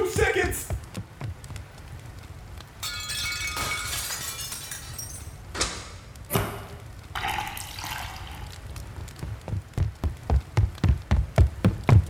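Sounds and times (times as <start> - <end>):
footsteps: 0.0 - 2.8, 8.6 - 12.0
glassware clinking in a kitchen: 2.8 - 5.4
milk poured into a glass: 7.2 - 8.5.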